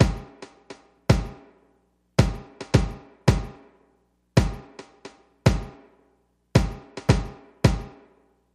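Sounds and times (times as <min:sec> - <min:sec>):
ambient house kick drum: 0:00.0 - 0:00.4, 0:01.1 - 0:01.5, 0:02.2 - 0:03.6, 0:04.4 - 0:04.8, 0:05.4 - 0:05.8, 0:06.6 - 0:08.0
ambient house tom drum: 0:00.0 - 0:01.5, 0:02.2 - 0:03.7, 0:04.4 - 0:05.9, 0:06.6 - 0:08.0.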